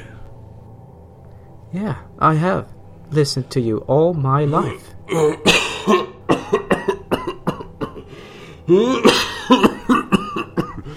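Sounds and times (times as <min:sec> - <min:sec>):
speech: 0:01.7 - 0:06.6, 0:08.7 - 0:09.7
man coughing hard in a ragged fit: 0:04.5 - 0:08.1, 0:08.7 - 0:10.9
wheezing, strained breaths: 0:08.0 - 0:08.7.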